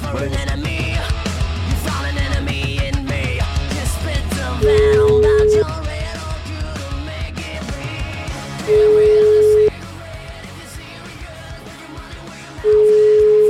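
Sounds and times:
continuous music: 0.0s - 13.4s
telephone tones while a call is placed again: 4.6s - 5.7s, 8.7s - 9.7s, 12.7s - 13.4s.

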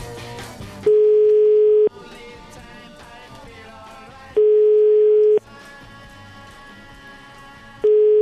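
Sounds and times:
telephone ringback tone after dialing a restaurant: 0.9s - 1.9s, 4.4s - 5.4s, 7.8s - 8.2s.

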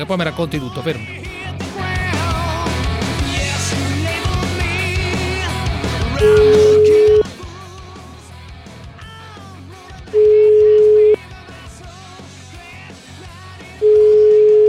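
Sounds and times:
speech: 0.0s - 1.2s, 6.2s - 6.7s
quieter musical background: 0.0s - 14.6s
telephone ringback tone on an outgoing call: 6.2s - 7.3s, 10.2s - 11.2s, 13.8s - 14.6s.

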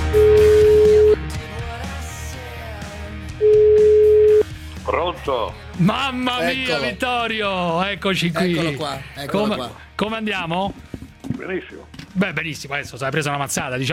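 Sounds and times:
telephone ringback tones of a call to a home in Rome: 0.1s - 1.3s, 3.4s - 4.5s
speech: 5.2s - 10.9s, 11.4s - 13.9s.

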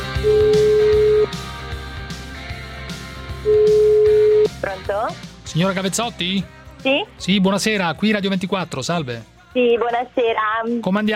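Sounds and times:
telephone ringback tone on an outgoing call to a home in Montichiari: 0.2s - 1.4s, 3.4s - 4.6s
speech: 4.9s - 11.1s.

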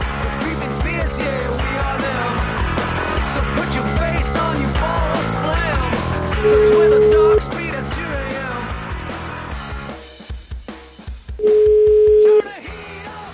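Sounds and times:
music: 0.0s - 10.0s, 11.5s - 13.3s
telephone dial tone while placing a call: 6.5s - 7.4s, 11.4s - 12.4s.

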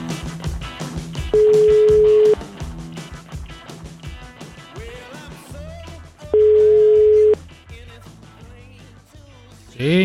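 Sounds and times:
busy music: 0.0s - 10.0s
outgoing call telephone ringing tone beeps: 1.4s - 2.4s, 6.4s - 7.4s.

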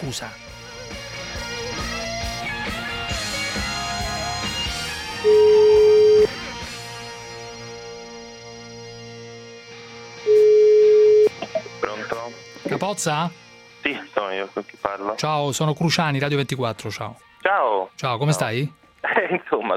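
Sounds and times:
speech: 0.0s - 1.0s, 5.2s - 5.5s, 12.8s - 19.7s
music: 0.0s - 19.7s
ringback tones of an outgoing telephone call: 5.2s - 6.4s, 10.2s - 11.4s.

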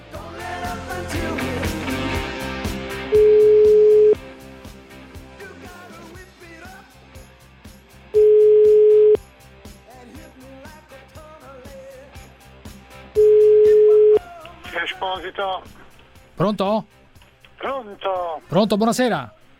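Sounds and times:
telephone line tone as a call is placed: 3.2s - 4.2s, 8.2s - 9.2s, 13.2s - 14.2s
speech: 16.4s - 17.0s, 17.9s - 19.4s.

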